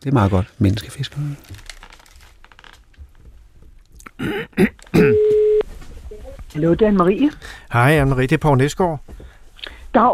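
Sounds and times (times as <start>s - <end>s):
speech: 0.0s - 1.7s, 4.2s - 5.4s, 6.5s - 9.3s, 9.9s - 10.1s
telephone ringing tone: 5.0s - 5.6s.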